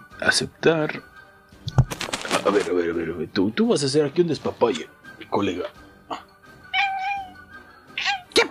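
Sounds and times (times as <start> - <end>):
speech: 0.2 - 1.1, 2.3 - 5.8
cat meowing: 6.6 - 8.4.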